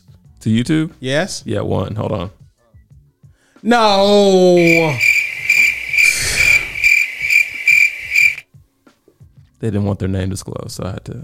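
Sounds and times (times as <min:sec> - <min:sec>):
speech: 0:00.4 - 0:02.4, 0:03.6 - 0:05.1, 0:09.6 - 0:11.2
crickets chirping: 0:04.2 - 0:08.4.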